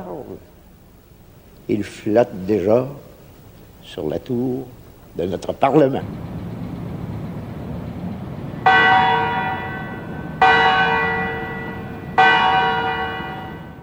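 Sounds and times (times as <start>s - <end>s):
steady low rumble of outdoor noise: 0.0s - 13.8s
speech: 1.7s - 3.1s, 3.8s - 6.3s
large bell tolling in the central tower of the Quebec Parliament building: 6.0s - 13.8s.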